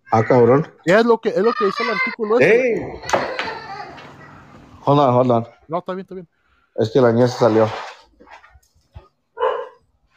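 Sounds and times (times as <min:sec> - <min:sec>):
speech: 0:00.1 - 0:03.3, 0:04.8 - 0:07.8
dogs barking: 0:09.4 - 0:09.8.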